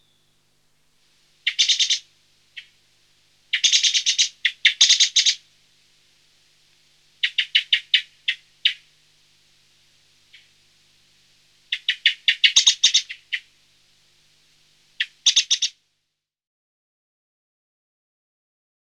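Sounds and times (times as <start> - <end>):
song thrush singing: 0.0 - 0.5, 1.4 - 2.8, 3.5 - 5.4, 7.2 - 8.8, 11.7 - 13.5, 15.0 - 15.7
faint steady hiss: 0.0 - 16.3.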